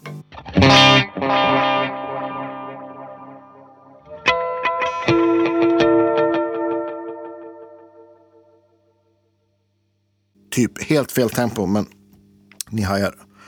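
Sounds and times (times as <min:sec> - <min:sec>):
electric guitar played through a delay effect: 0:00.0 - 0:08.8
speech: 0:10.6 - 0:12.0, 0:12.7 - 0:13.3.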